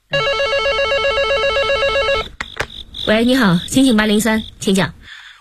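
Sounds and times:
electronic telephone ring in a police detectives' duty office: 0:00.1 - 0:02.3
speech: 0:03.1 - 0:05.0.

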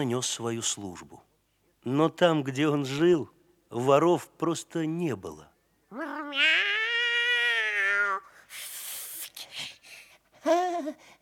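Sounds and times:
speech: 0:00.0 - 0:06.7, 0:10.4 - 0:11.1
cat meowing: 0:05.9 - 0:08.2.

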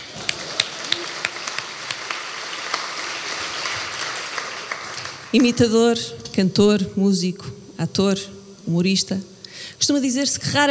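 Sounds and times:
audience applause at a comedy roast: 0:00.0 - 0:05.8
speech: 0:05.3 - 0:10.7.

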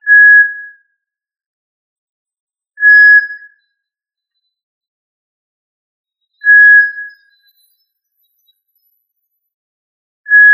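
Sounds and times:
quail whistle: 0:00.0 - 0:00.9, 0:02.8 - 0:03.7, 0:06.4 - 0:07.8.

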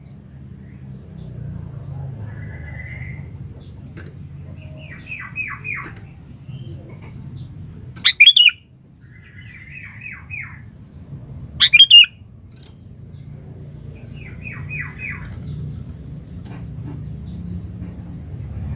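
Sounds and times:
falling chirps: 0:00.0 - 0:18.7
low rumbling background: 0:00.0 - 0:18.7
sooty-headed bulbul chortling phrases: 0:01.9 - 0:10.6, 0:11.6 - 0:12.2.

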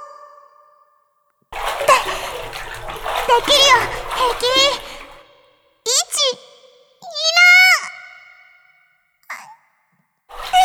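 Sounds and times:
water splashing as a face is dipped into a pool in a video game: 0:01.6 - 0:05.4, 0:10.3 - 0:10.6.

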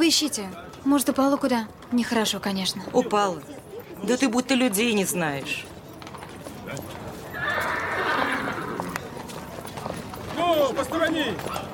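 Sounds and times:
horse hooves clip-clopping: 0:00.0 - 0:11.7
speech: 0:00.1 - 0:05.7, 0:10.6 - 0:11.6
horse being led neighing: 0:07.3 - 0:09.1.

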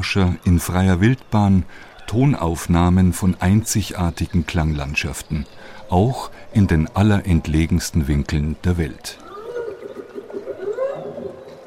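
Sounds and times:
speech: 0:00.0 - 0:09.2
whale song recorded off the coast of Alaska: 0:09.2 - 0:11.6.

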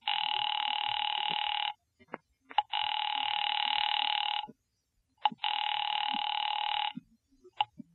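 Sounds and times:
telephone line ringing in buzzing bursts: 0:00.0 - 0:01.8, 0:02.6 - 0:04.5, 0:05.3 - 0:07.0.

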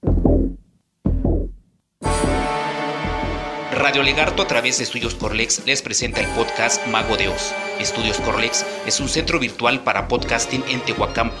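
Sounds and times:
heartbeat sound effect with deep booming thuds: 0:00.0 - 0:03.5
sustained bright tonal sound: 0:02.1 - 0:05.5, 0:06.1 - 0:11.1
speech: 0:03.8 - 0:11.3.

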